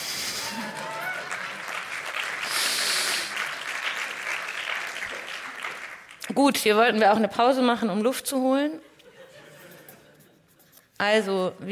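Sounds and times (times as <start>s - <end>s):
audience applause: 0.0s - 6.2s
speech: 6.3s - 8.9s, 11.0s - 11.7s
laughter: 8.9s - 10.5s.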